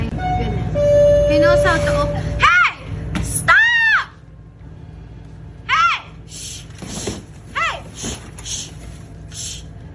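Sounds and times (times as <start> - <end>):
low hum: 0.0 - 9.9
speech: 1.5 - 2.3
woman yelling at a bear inside a store: 2.4 - 4.2, 5.7 - 6.2, 7.5 - 7.9.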